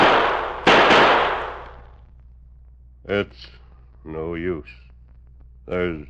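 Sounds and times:
last three bullets fired from a gun: 0:00.0 - 0:01.9
speech: 0:03.1 - 0:04.8, 0:05.6 - 0:06.0.

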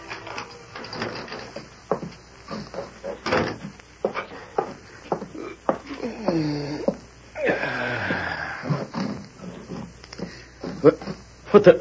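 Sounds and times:
front door of a boarding house creaking and clattering open: 0:00.0 - 0:01.7
shuffling steps of someone coming inside: 0:01.4 - 0:07.2, 0:08.0 - 0:11.7
speech: 0:10.8 - 0:11.7.

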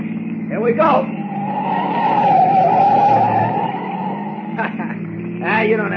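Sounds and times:
light car's tires screeching skidding through a sharp right turn: 0:00.0 - 0:05.9
road noise: 0:00.0 - 0:05.9
speech: 0:00.5 - 0:01.8, 0:05.5 - 0:05.9.

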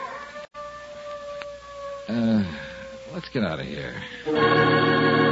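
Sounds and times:
dog howling: 0:00.0 - 0:03.2
speech: 0:02.1 - 0:05.2.

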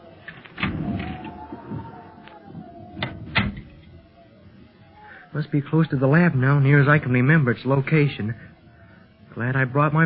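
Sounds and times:
door creaking open with a long squeal: 0:00.2 - 0:04.0
speech: 0:05.4 - 0:08.5, 0:09.4 - 0:10.0.

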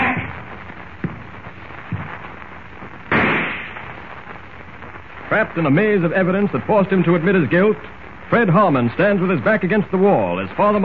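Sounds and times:
faint thuds: 0:00.0 - 0:02.4
steady hiss: 0:00.0 - 0:10.8
rifle shot: 0:03.1 - 0:03.8
speech: 0:05.3 - 0:10.8.

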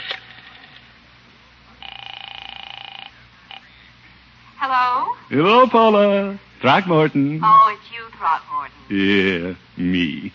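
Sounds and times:
telephone being dialed with electronic tones: 0:01.8 - 0:03.7
speech: 0:04.7 - 0:10.3.

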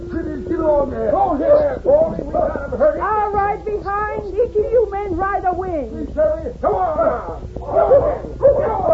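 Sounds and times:
speech: 0:00.1 - 0:08.9
dogs barking and yelping while herding: 0:07.7 - 0:08.9.

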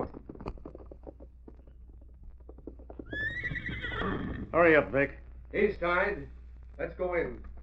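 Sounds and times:
horse hooves clopping: 0:00.0 - 0:07.6
horse whinnying: 0:03.0 - 0:04.6
speech: 0:04.6 - 0:07.5.

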